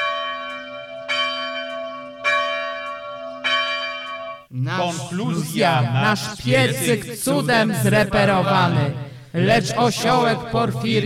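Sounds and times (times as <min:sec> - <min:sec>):
church bells ringing: 0:00.0 - 0:07.1
speech: 0:04.5 - 0:11.0.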